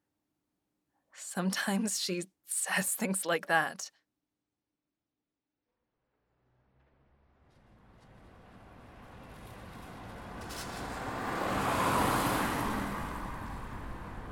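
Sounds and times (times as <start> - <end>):
speech: 1.4 - 4.0
car approaching and pulling up: 6.0 - 14.3.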